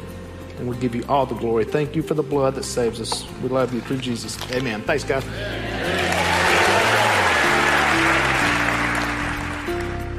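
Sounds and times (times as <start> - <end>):
speech: 0.6 - 6.0
large crowd applauding a featured speaker: 5.4 - 10.1.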